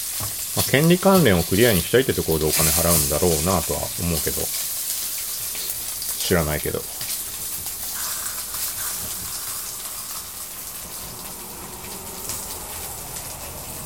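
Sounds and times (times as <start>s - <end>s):
pork belly sizzling in a frying pan: 0.0s - 13.8s
speech: 0.7s - 4.7s, 6.3s - 7.0s.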